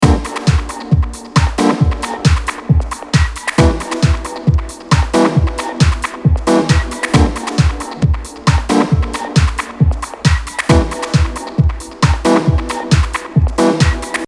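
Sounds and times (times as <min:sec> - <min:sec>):
dub techno music: 0:00.0 - 0:14.2.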